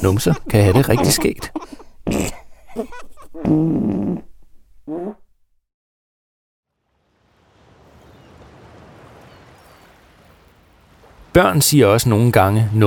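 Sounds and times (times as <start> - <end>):
speech: 0.0 - 2.3, 3.5 - 4.3, 11.4 - 12.8
laughter: 0.0 - 3.4
farts in a farting contest: 3.4 - 4.3, 4.9 - 5.3.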